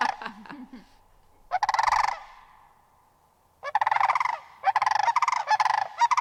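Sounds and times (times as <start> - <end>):
sandhill cranes giving their unison call: 0.0 - 0.4, 1.3 - 2.9, 3.6 - 6.1
laughter: 0.0 - 1.0.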